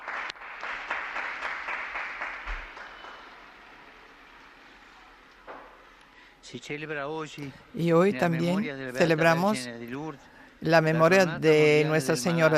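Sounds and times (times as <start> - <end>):
crowd applause for a newly canonized saint: 0.0 - 5.9
speech: 6.5 - 12.5.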